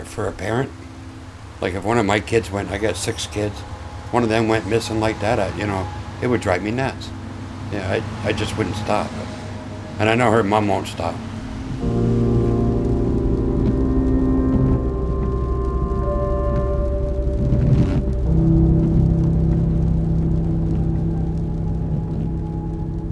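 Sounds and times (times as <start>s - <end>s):
low droning car engine hum: 0.0s - 23.1s
speech: 0.2s - 0.9s, 1.6s - 9.4s, 10.0s - 12.1s
heavy rain drumming on a moving car: 0.3s - 23.1s.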